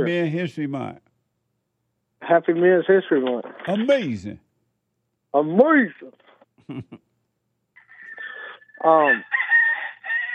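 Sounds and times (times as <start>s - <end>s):
speech: 0.0s - 1.1s, 2.2s - 4.4s, 5.3s - 7.1s, 8.8s - 9.4s
rooster crowing: 8.9s - 10.3s.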